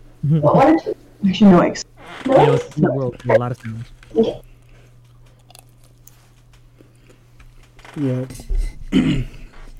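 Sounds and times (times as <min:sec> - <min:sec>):
speech: 0:00.2 - 0:04.5, 0:08.0 - 0:09.4
person chewing food: 0:03.3 - 0:07.8.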